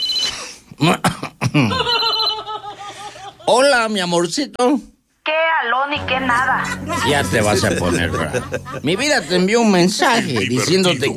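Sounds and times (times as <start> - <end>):
phone ringtone warbling: 0.0 - 0.3, 1.9 - 2.5
speech: 0.8 - 1.8, 3.8 - 11.1
short bursts of laughter: 1.4 - 3.5, 6.6 - 11.1.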